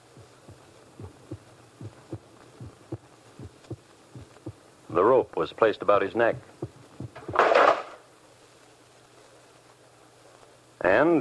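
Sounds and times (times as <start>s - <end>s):
deep heartbeat pounding: 0.0s - 5.0s, 6.4s - 7.4s
low hum: 0.0s - 5.1s, 6.4s - 7.4s
speech: 5.0s - 6.5s.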